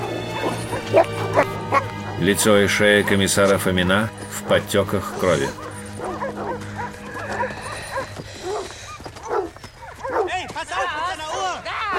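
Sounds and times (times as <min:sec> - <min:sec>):
dog barking as it is set on a prisoner: 0:00.0 - 0:01.9, 0:05.2 - 0:11.9
speech: 0:02.2 - 0:05.7.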